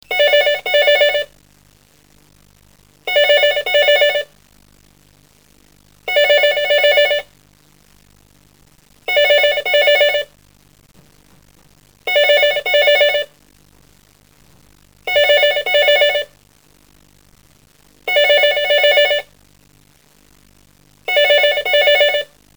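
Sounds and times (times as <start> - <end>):
telephone ringing as alarm in broadcast room bell system: 0.1 - 1.3, 3.1 - 4.3, 6.1 - 7.3, 9.1 - 10.3, 12.1 - 13.3, 15.1 - 16.3, 18.1 - 19.3, 21.1 - 22.3.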